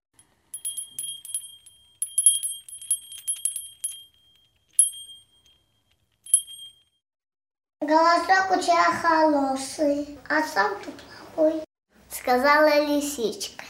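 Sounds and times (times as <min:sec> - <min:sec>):
small high-pitched bell hanging on a twig in a forest: 0:00.2 - 0:07.0
speech: 0:07.9 - 0:11.6, 0:12.2 - 0:13.6.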